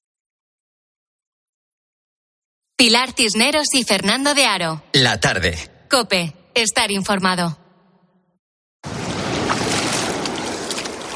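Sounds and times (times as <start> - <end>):
speech: 2.8 - 7.6
sea water sloshing and splashing around a wading person: 8.8 - 11.1.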